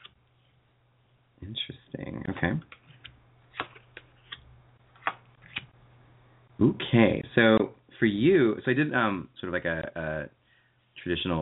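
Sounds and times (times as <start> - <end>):
faint steady hum: 0.0 - 11.4
speech: 1.4 - 2.8, 6.6 - 10.4, 11.0 - 11.4
tarot cards being shuffled: 2.7 - 5.7.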